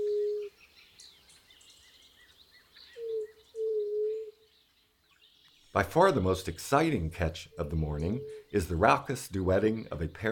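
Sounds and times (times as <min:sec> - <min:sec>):
white-tipped dove cooing in the lower Rio Grande Valley, Texas: 0:00.0 - 0:00.6, 0:02.8 - 0:04.5, 0:07.5 - 0:08.5
faint background birdsong: 0:00.0 - 0:10.3
speech: 0:05.8 - 0:10.3.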